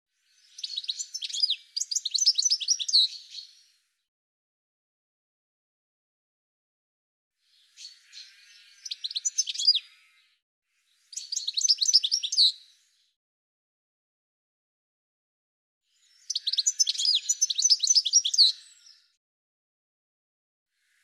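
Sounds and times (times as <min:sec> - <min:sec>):
birds chirping and twittering: 0:00.2 - 0:03.9, 0:07.4 - 0:13.1, 0:15.9 - 0:19.2.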